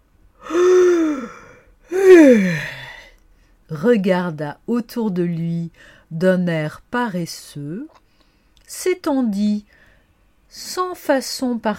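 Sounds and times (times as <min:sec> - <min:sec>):
person acting out a bear yawning: 0:00.4 - 0:03.1
speech: 0:03.7 - 0:08.0, 0:08.7 - 0:09.8, 0:10.5 - 0:11.7.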